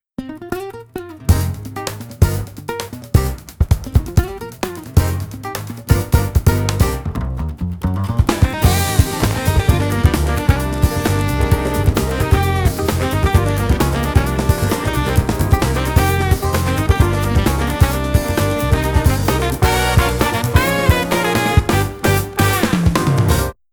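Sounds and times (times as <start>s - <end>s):
city groove music with stereo chorus effect: 1.2s - 23.6s.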